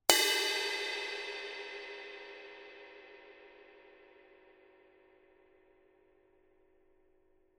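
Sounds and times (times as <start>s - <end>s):
extra thin cymbal bell: 0.1s - 6.8s.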